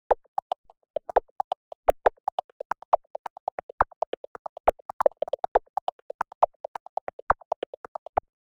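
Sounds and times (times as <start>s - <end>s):
percussion loop: 0.0s - 8.4s.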